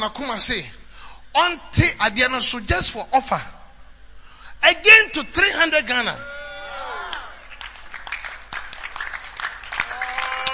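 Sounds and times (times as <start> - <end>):
speech: 0.0 - 3.6, 4.6 - 6.3
audience clapping: 7.0 - 10.5.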